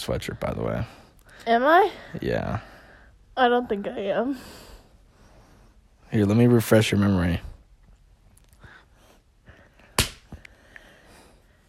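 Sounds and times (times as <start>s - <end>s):
speech: 0.0s - 2.7s, 3.4s - 4.7s, 6.1s - 7.5s
hand slapping someone's head: 9.8s - 10.5s.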